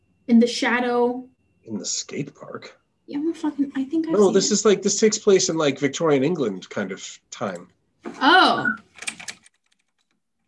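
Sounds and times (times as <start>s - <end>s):
speech: 0.3s - 8.9s
rapid computer keyboard typing: 8.7s - 10.4s.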